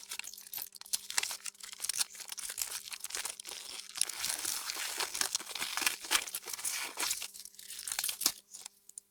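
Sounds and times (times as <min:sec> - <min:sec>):
Christmas gift wrap rustling: 0:02.2 - 0:08.4.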